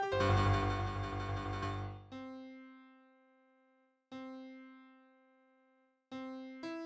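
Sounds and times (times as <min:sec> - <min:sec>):
fanfare: 0:00.1 - 0:02.0.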